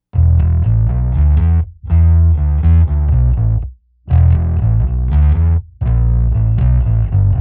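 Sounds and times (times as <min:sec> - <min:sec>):
bass guitar with steel strings playing a riff with distortion and chorus: 0:00.1 - 0:07.3.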